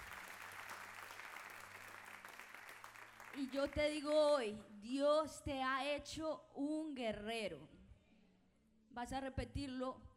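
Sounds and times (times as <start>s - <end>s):
audience applauding: 0.0s - 4.0s
speech: 3.4s - 7.8s, 9.0s - 10.1s.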